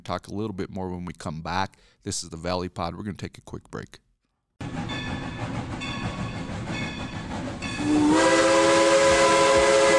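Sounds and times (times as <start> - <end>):
speech: 0.0 - 4.0
rumbling rail noise of a steam train: 4.6 - 9.9
steam train whistle on the Cumbres and Toltec Scenic Railroad: 7.7 - 9.9.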